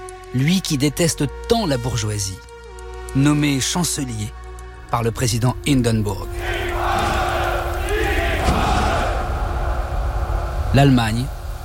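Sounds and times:
speech: 0.3 - 2.5, 3.1 - 6.7, 10.7 - 11.4
vast crowd of men and women cheering and shouting in Germany: 6.4 - 10.3.

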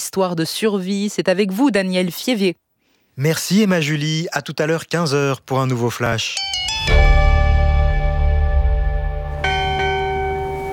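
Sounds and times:
speech: 0.1 - 2.6, 3.2 - 7.1
ship's bell clanging: 6.4 - 8.4, 9.3 - 10.7.

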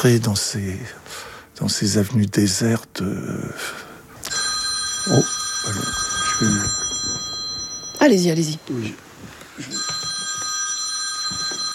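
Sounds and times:
speech: 0.0 - 3.9, 5.0 - 6.8, 8.0 - 9.9
telephone bell ringing: 4.2 - 9.0, 9.6 - 11.7.

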